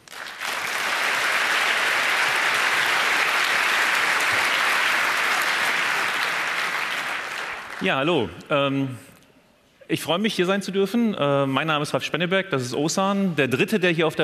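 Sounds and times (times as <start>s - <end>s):
crowd applauding to welcome speakers: 0.0s - 8.3s
speech: 7.8s - 9.1s, 9.9s - 14.2s.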